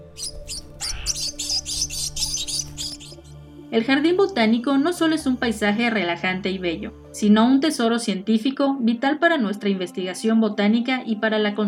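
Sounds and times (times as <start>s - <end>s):
birds chirping in a botanical garden of dry tropical deciduous forest: 0.0s - 3.4s
speech: 3.7s - 11.6s.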